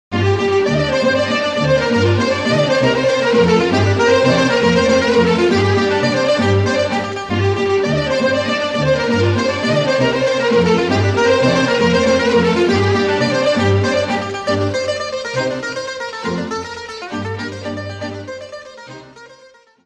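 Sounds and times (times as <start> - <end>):
Thracian folk dance music from Bulgaria: 0.1 - 19.5.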